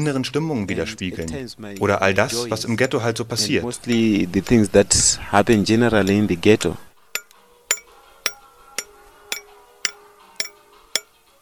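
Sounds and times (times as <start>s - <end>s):
speech: 0.0s - 6.9s
hammer and chisel striking stone carving a sculpture: 7.2s - 11.4s.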